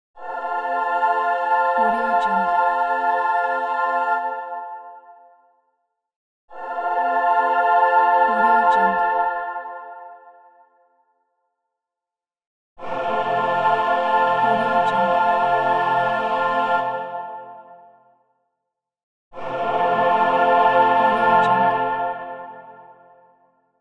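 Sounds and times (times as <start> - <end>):
angelic choir singing ahh: 0.2 - 5.3, 6.5 - 10.6, 12.8 - 18.0, 19.3 - 23.4.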